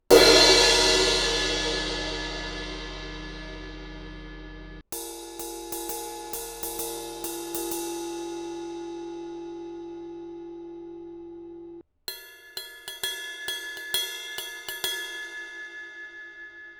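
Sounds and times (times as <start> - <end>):
Paiste 18 inch thin crash cymbal: 0.0 - 10.4.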